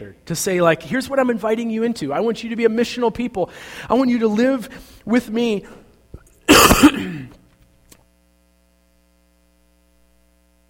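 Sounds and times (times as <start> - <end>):
speech: 0.0 - 5.8, 6.5 - 7.3
person coughing harshly into a microphone: 6.5 - 7.4.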